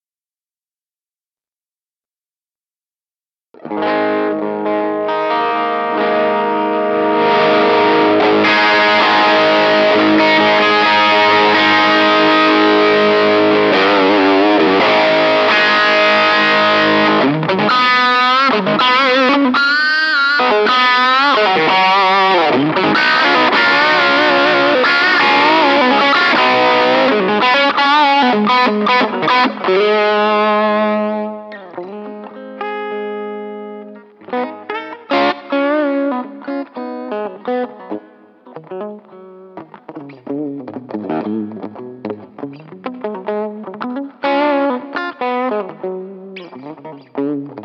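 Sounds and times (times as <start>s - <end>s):
electric guitar through a 2x10 amplifier: 3.6s - 47.6s.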